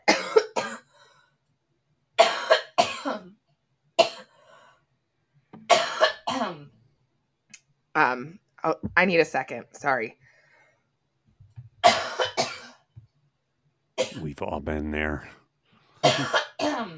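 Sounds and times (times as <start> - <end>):
person coughing: 0.0 - 1.0, 2.2 - 3.4, 4.0 - 4.3, 5.7 - 6.7, 11.8 - 12.8, 14.0 - 14.3, 16.0 - 16.9
speech: 8.0 - 10.2, 14.4 - 15.4, 16.0 - 16.9.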